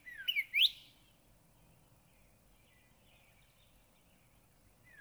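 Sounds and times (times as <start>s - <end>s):
Northern cardinal song of clear slurred whistles: 0.2s - 0.9s.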